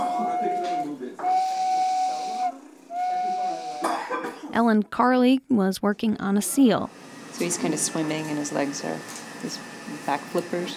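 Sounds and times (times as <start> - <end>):
carved wooden airplane-shaped whistle blown in long breathy blasts: 0.0 - 4.0
speech: 4.6 - 10.7.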